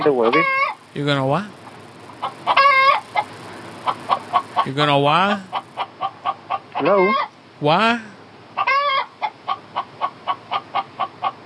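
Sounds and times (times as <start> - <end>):
speech: 0.0 - 1.6, 4.6 - 5.6, 6.8 - 8.1
chicken clucking: 2.2 - 7.3, 8.6 - 11.4.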